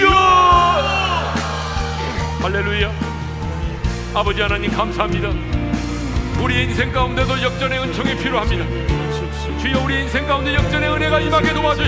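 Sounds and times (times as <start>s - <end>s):
large audience crying out Lord in Korean in unison in prayer: 0.0s - 2.4s
speech: 2.5s - 3.1s, 4.1s - 5.6s, 6.4s - 11.8s.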